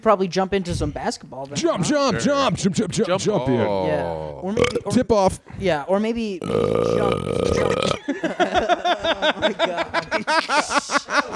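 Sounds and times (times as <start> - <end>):
speech: 0.0 - 11.3
laughter: 2.0 - 3.8, 7.5 - 11.3
person burping in short croaky bursts: 3.2 - 5.0, 6.4 - 8.0.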